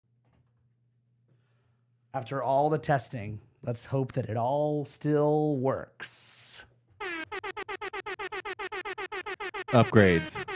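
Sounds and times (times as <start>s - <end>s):
speech: 2.1s - 6.5s, 9.7s - 10.5s
air horn sound effect played from a tap pad: 7.0s - 10.5s.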